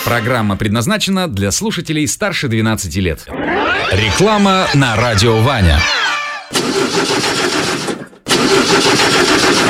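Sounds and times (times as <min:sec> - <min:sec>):
speech: 0:00.2 - 0:06.1
heavy truck engine cranking, failing to start: 0:03.3 - 0:09.6.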